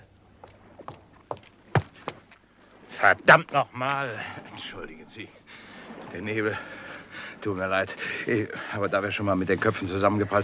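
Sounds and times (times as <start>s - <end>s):
man's quick footsteps on a hard surface in fog: 0.4s - 2.4s
speech: 3.0s - 6.8s, 7.4s - 10.4s.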